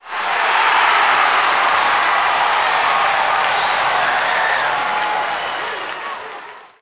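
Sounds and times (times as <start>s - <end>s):
clapping in a hockey stadium: 0.0s - 6.7s.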